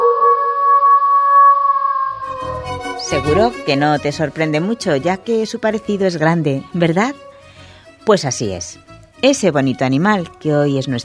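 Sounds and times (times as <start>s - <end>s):
wolf howling: 0.0s - 3.1s
speech: 3.1s - 7.2s, 8.0s - 11.0s.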